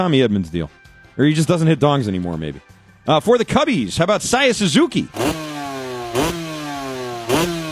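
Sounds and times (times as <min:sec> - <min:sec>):
speech: 0:00.0 - 0:05.5, 0:06.1 - 0:06.4
engine idling and revving: 0:05.1 - 0:07.7.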